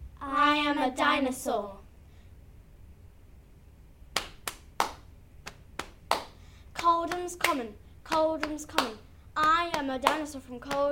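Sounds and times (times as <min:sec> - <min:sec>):
speech: 0:00.6 - 0:01.8, 0:07.1 - 0:10.8
hand claps: 0:04.1 - 0:10.8.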